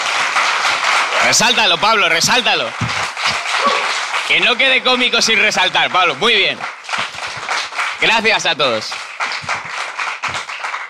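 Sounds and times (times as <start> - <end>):
audience applause for a comedian: 0.0 - 10.8
speech: 1.3 - 3.0, 3.6 - 6.7, 8.0 - 9.0.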